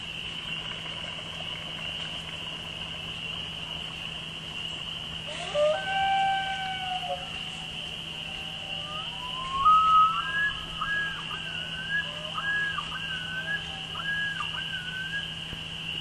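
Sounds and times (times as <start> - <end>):
spring peepers chorus: 0.0 - 16.0
loon wailing: 5.3 - 15.4.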